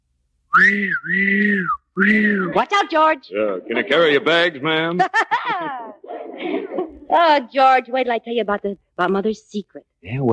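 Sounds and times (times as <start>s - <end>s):
loud steady whistle blasts: 0.5s - 2.5s
speech: 0.6s - 10.3s
laughter: 2.1s - 7.1s.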